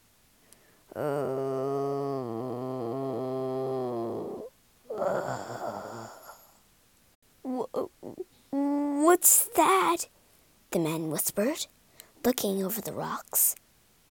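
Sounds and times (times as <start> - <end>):
voice imitating the loud snoring of a sleeping griffin: 0.9 - 6.6
speech: 9.2 - 10.2, 10.8 - 13.6.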